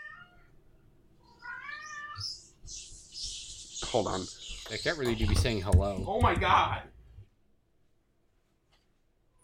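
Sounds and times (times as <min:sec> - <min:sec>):
cat meowing and yowling: 0:00.0 - 0:00.5, 0:01.2 - 0:02.4
speech: 0:03.9 - 0:07.0.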